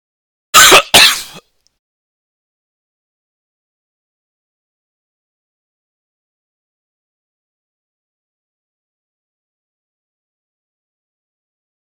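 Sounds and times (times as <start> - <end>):
coughing and throat clearing: 0.6 - 1.4.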